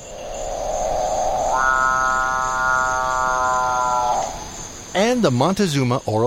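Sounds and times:
capuchinbird call, tropical bird: 1.3 - 4.6
speech: 5.1 - 6.2.

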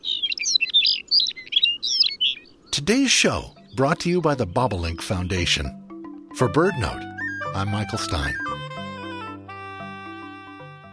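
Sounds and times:
Lapland longspur singing in flight over Arctic tundra: 0.0 - 6.2, 7.0 - 8.7
speech: 2.8 - 5.8, 6.4 - 8.5.

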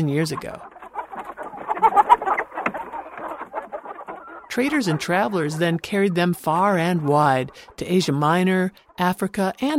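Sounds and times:
speech: 0.0 - 0.7, 4.5 - 9.7
hybrid Araucana Rhode Island Red rooster clucking and chattering: 0.0 - 9.1.

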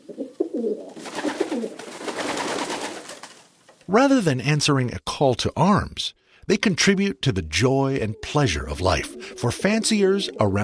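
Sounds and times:
homing pigeons cooing: 0.0 - 1.8, 7.8 - 10.6
rustling fluttering noise: 0.3 - 3.8
speech: 3.9 - 10.6.

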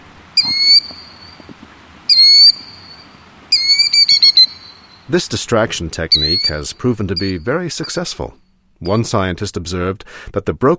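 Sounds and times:
killdeer calling with shrill cries and stuttering trill: 0.0 - 9.1
speech: 5.1 - 10.7.

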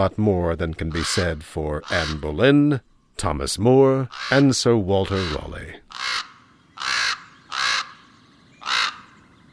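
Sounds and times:
speech: 0.0 - 5.9
raven croaking: 0.8 - 2.5, 4.0 - 9.2.

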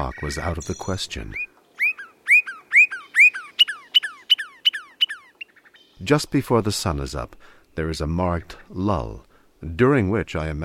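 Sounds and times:
speech: 0.0 - 1.5, 6.0 - 10.6
Northern Cardinal whistling: 0.0 - 6.0.

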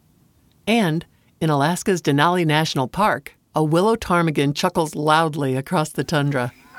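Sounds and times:
speech: 0.7 - 6.6
Black Rail calling after dark at a wildlife refuge in Arizona: 6.0 - 6.7.

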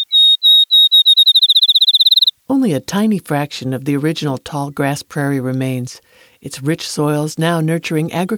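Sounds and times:
field sparrow song: 0.0 - 2.4
speech: 2.5 - 8.3.

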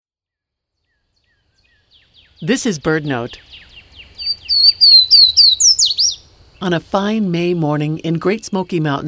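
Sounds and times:
Swainson's Warbler singing in a rhododendron thicket in Great Smoky Mountains National Park: 0.6 - 9.0
speech: 2.4 - 3.5, 6.6 - 9.0.

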